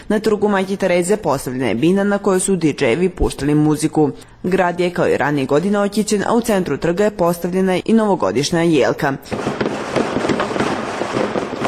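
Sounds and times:
speech: 0.1 - 9.6
fireworks and firecrackers at a New Year celebration in a city square: 9.2 - 11.6.

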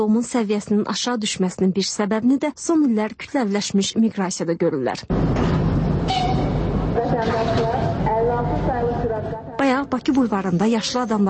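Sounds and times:
speech: 0.0 - 6.5, 7.1 - 11.2
rail rumble at a railway station: 5.1 - 11.2
high tonal squeals at a railway station: 6.0 - 6.7.

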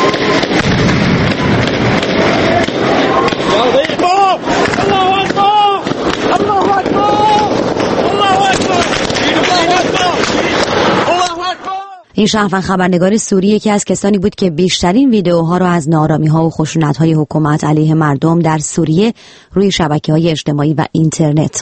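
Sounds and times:
rough wind-buffeted noise: 0.0 - 11.6
sharp gunshots: 0.0 - 11.7
crowd shouting and screaming: 2.0 - 12.1
speech: 12.2 - 21.5.

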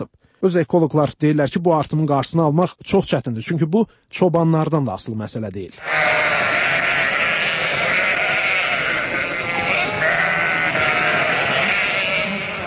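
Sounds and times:
speech: 0.4 - 7.0
chorus of sheep bleating in Azerbaijan: 5.8 - 12.6.

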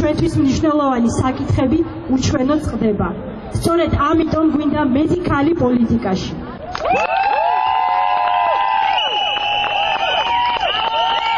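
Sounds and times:
speech: 0.1 - 7.3
crowd of women protesting outside parliament shouting and cheering: 6.6 - 11.3
swooping whistle-like calls from protesting women: 8.8 - 10.4.

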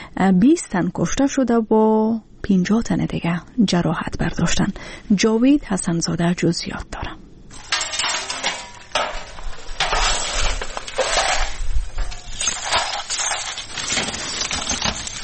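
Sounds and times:
speech: 0.2 - 7.2
glass shards and household debris being gathered up: 7.5 - 15.2.

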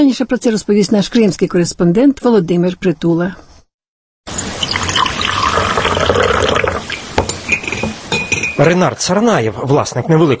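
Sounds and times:
speech: 0.0 - 3.5, 8.6 - 10.3
coffee poured into small cups: 4.3 - 8.6.

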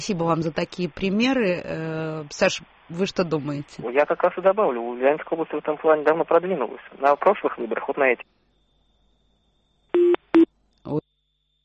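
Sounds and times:
speech: 0.0 - 8.4, 10.8 - 11.0
telephone busy tone after a dropped phone call: 10.0 - 10.5.

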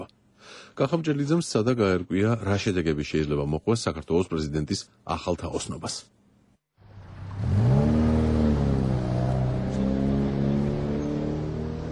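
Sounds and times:
speech: 0.7 - 6.2
car engine rumbling on city streets: 6.8 - 11.9.

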